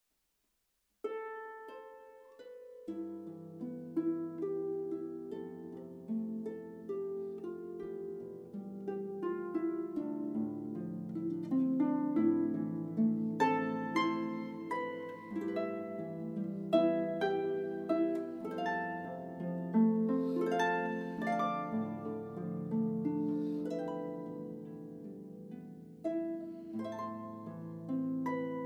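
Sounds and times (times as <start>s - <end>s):
harp melody: 1.0s - 28.6s.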